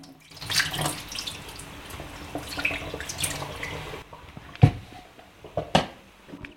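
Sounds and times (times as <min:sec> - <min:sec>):
water pouring into a kettle: 0:00.0 - 0:04.0.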